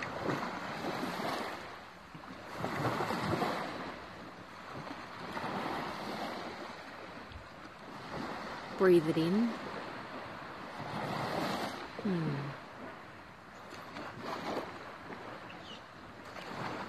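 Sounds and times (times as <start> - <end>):
ocean waves washing ashore: 0.0 - 16.8
speech: 8.8 - 9.6, 12.0 - 12.5
person murmuring: 12.0 - 12.6.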